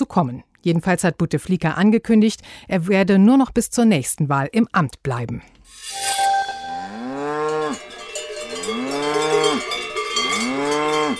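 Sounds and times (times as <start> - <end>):
speech: 0.1 - 6.2
cow mooing: 6.6 - 11.1
cowbells jangling: 6.6 - 11.1.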